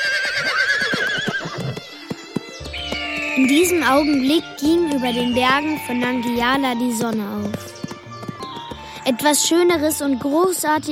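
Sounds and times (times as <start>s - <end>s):
horse whinnying loudly and shrilly: 0.0s - 4.0s
horse hoof clops as it is ridden off: 0.0s - 10.9s
speech: 3.4s - 7.7s, 9.1s - 10.9s.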